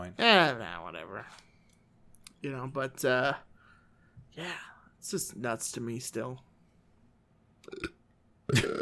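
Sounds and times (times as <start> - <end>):
speech: 0.1 - 1.5, 2.4 - 3.5, 4.3 - 6.5, 7.7 - 7.9
louder longer rough belch: 7.6 - 8.8
short burp: 7.6 - 8.8.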